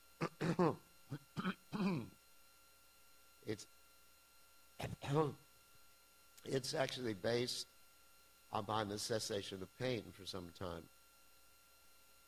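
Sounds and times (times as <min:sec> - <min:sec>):
person coughing: 0:00.2 - 0:02.1, 0:04.8 - 0:05.3
person clearing throat: 0:00.2 - 0:02.2, 0:04.8 - 0:05.3
speech: 0:00.5 - 0:02.1, 0:03.5 - 0:03.8, 0:05.1 - 0:05.4, 0:06.4 - 0:07.7, 0:08.5 - 0:11.0.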